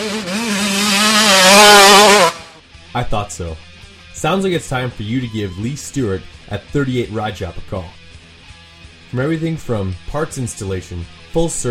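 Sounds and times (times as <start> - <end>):
dirt bike engine revving: 0.0 - 2.6
speech: 3.0 - 8.0, 9.1 - 11.7.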